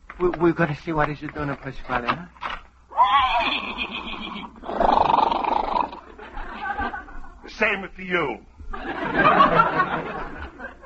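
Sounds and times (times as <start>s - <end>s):
speech: 0.2s - 2.4s, 7.6s - 10.4s
horse whinnying: 2.9s - 6.1s
laughter: 6.0s - 7.6s, 8.6s - 10.8s.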